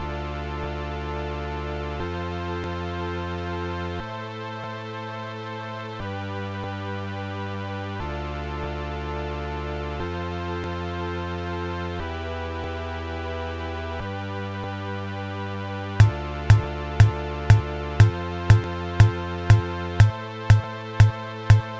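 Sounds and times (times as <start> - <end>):
dry keyboard preset sound: 16.0 - 21.7.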